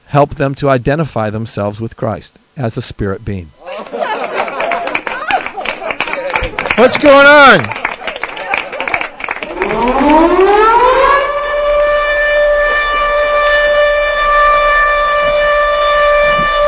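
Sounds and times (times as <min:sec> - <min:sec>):
speech: 0:00.1 - 0:04.1, 0:06.8 - 0:07.9
laughter: 0:03.6 - 0:09.8
siren wailing: 0:09.3 - 0:16.6.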